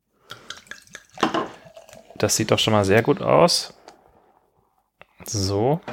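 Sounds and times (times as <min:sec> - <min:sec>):
India Pale Ale of 6.8 percent pouring from a bottle into a glass: 0:00.4 - 0:03.4
speech: 0:02.2 - 0:03.8, 0:05.3 - 0:05.9.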